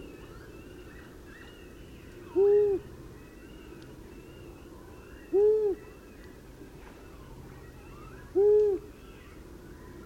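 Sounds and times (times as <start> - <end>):
long-eared owl giving deep brief hoo notes: 2.3 - 2.9, 5.1 - 6.0, 8.1 - 8.9.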